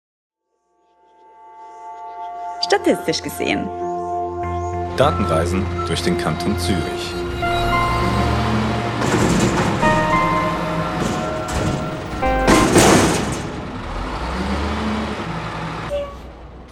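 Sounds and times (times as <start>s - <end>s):
speech: 2.7s - 3.8s, 5.0s - 7.3s
garbage truck engine droning while collecting bins: 5.1s - 16.7s
brief high squeal: 6.9s - 13.4s
garbage truck clanking: 7.3s - 16.7s.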